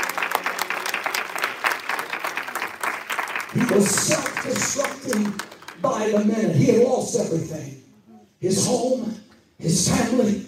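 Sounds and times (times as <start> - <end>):
room full of people applauding in worship: 0.0 - 6.2
speech: 3.6 - 7.8, 8.4 - 10.4.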